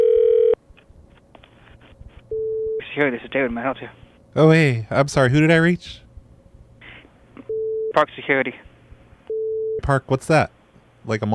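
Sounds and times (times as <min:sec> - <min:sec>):
telephone dialing tone: 0:00.0 - 0:00.6, 0:07.5 - 0:08.0
speech: 0:03.0 - 0:06.0, 0:08.0 - 0:08.7, 0:09.8 - 0:11.3.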